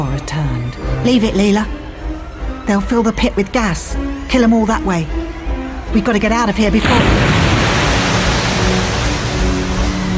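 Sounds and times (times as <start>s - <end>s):
speech: 0.0s - 1.8s, 2.7s - 5.2s, 5.9s - 7.4s
roar of rushing water: 6.8s - 10.1s.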